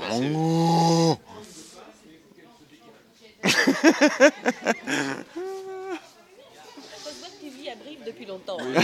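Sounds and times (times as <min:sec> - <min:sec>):
Limousin cow mooing: 0:00.0 - 0:01.2
people talking: 0:00.0 - 0:08.8
people laughing: 0:03.4 - 0:06.2, 0:08.6 - 0:08.8.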